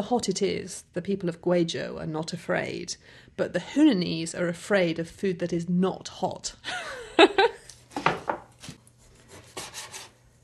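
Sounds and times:
speech: 0:00.0 - 0:07.6
knife slicing food into thin pieces: 0:08.0 - 0:10.2.

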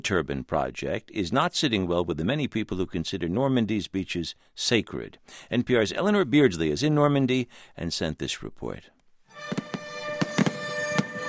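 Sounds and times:
speech: 0:00.0 - 0:09.6
fireworks bursting over a beach on the Normandy coast: 0:09.5 - 0:11.2.

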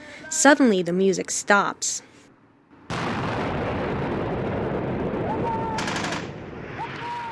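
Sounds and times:
speech: 0:00.3 - 0:02.1
loud gunfire: 0:02.9 - 0:06.6
rocket-propelled grenade explosions: 0:02.9 - 0:07.3.

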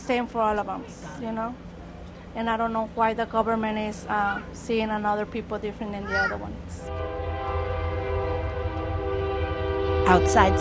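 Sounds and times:
train going by outside a store and laundromat: 0:00.0 - 0:10.6
speech: 0:00.1 - 0:01.7, 0:02.3 - 0:07.2, 0:10.1 - 0:10.6.

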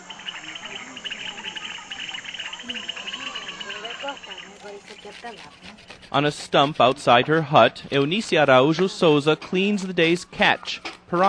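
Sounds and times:
lower frog croaks and calls: 0:00.0 - 0:05.0
chorus of frogs singing in a creek beside a community-run school: 0:00.0 - 0:06.3
speech: 0:04.1 - 0:11.2.

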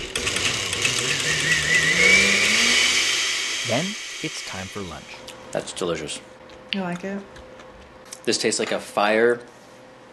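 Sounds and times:
blender motor whirring while pulsing cauliflower soup: 0:00.0 - 0:05.3
speech: 0:03.7 - 0:07.4, 0:08.2 - 0:09.6.

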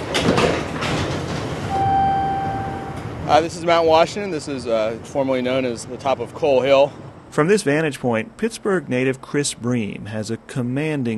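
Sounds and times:
incline cable railway car rumbling and clattering climbing steep hillside: 0:00.0 - 0:07.2
speech: 0:03.3 - 0:11.1.

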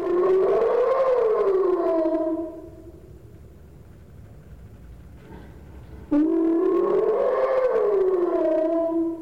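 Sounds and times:
hyena giving long slow whoops: 0:00.0 - 0:02.9, 0:06.1 - 0:09.2.

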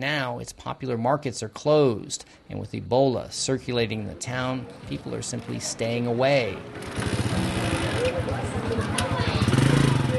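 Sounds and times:
speech: 0:00.0 - 0:08.5
murmur of voices: 0:03.8 - 0:10.1
small motorcycle taxi engine idling and revving: 0:06.8 - 0:10.1.

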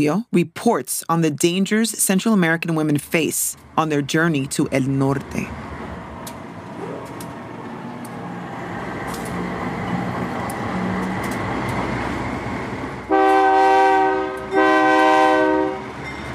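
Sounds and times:
speech: 0:00.0 - 0:05.7
freight train rumbling along train tracks north of Mexico City: 0:02.9 - 0:16.3
freight train horn blasts: 0:13.1 - 0:16.0.

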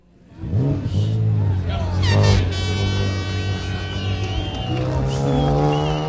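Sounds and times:
rally race vehicles revving and pulling away from a starting line: 0:00.0 - 0:06.0
murmuring crowd: 0:00.1 - 0:06.0.

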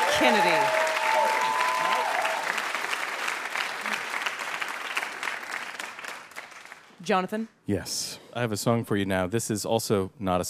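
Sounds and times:
audience clapping: 0:00.0 - 0:07.1
speech: 0:00.2 - 0:00.8, 0:07.1 - 0:10.4.

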